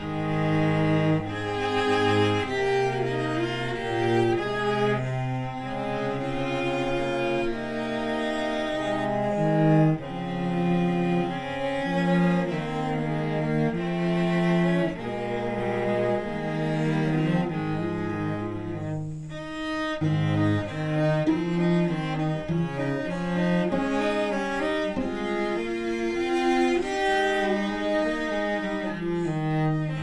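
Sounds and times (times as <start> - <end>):
cello trio: 0.0 - 30.0.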